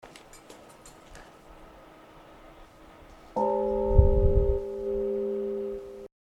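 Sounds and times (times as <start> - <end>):
bell ringing: 3.4 - 6.1.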